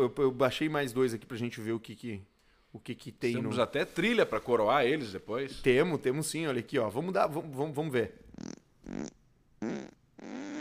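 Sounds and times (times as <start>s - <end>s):
speech: 0.0s - 9.0s
fart sound effects from a dirt-bike video: 8.3s - 10.5s.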